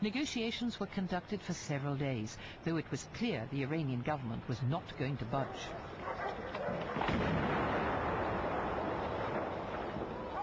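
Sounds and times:
speech: 0.0 - 7.4
stun grenade explosions: 7.0 - 10.2.

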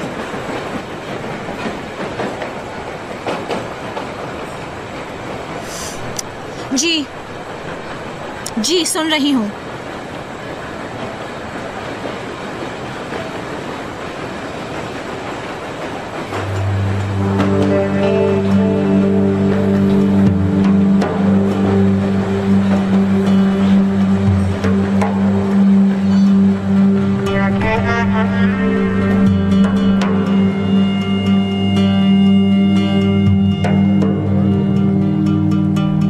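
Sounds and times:
metro train rumbling along its rails: 0.0 - 36.0
speech: 6.7 - 7.2, 8.6 - 9.6
rising tonal hum: 16.3 - 36.0.

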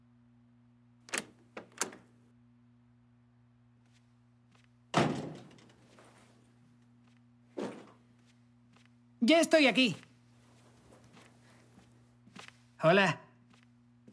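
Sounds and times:
steady low electrical hum: 0.0 - 14.1
heavy door thud with a rumbling tail: 4.9 - 5.7
speech: 9.2 - 10.0, 12.8 - 13.2.

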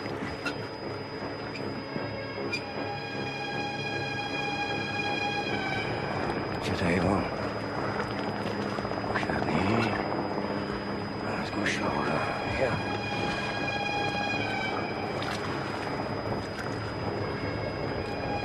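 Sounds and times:
helicopter flying overhead: 0.0 - 18.4.

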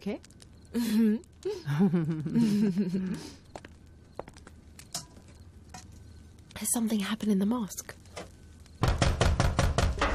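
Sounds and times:
speech: 0.0 - 3.4, 6.6 - 8.0
laughter: 1.7 - 3.3
loud heavy pounding on a door: 8.8 - 10.0.

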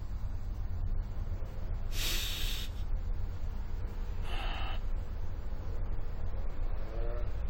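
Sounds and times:
constant low hum: 0.0 - 7.4
patient breathing deeply during a lung examination: 1.9 - 2.8, 4.2 - 4.9.

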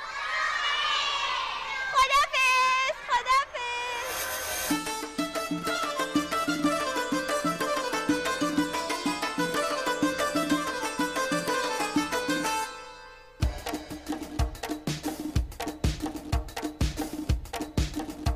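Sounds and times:
children screaming in a house: 0.0 - 4.4
upbeat music with a steady rhythm: 4.0 - 18.3.

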